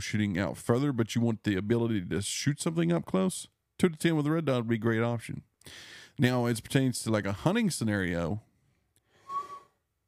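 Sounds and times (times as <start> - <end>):
speech: 0.0 - 8.5
person whistling: 9.2 - 9.8.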